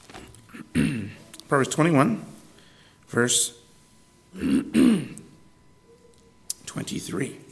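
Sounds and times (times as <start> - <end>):
person coughing: 0.5 - 1.2, 4.3 - 5.3
person clearing throat: 0.5 - 1.3, 4.3 - 5.3
speech: 1.5 - 2.3, 3.1 - 3.6, 4.4 - 5.1, 6.8 - 7.4.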